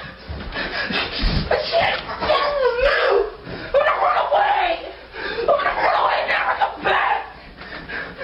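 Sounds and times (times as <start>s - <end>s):
teenage boy throwing a screaming tantrum: 1.5s - 7.4s.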